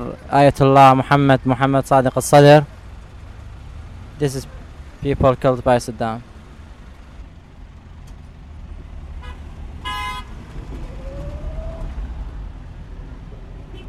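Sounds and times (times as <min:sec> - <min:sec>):
car and bus engines rumbling in busy street traffic: 0:00.0 - 0:13.8
speech: 0:00.2 - 0:02.8, 0:04.2 - 0:06.3
rising whine from a passing vehicle: 0:01.4 - 0:13.8
loud harmonic vehicle horn toot: 0:09.2 - 0:10.3.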